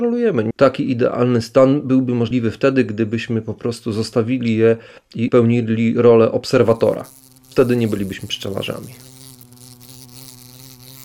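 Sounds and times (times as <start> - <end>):
speech: 0.0 - 9.1
wasp buzzing: 6.5 - 11.0.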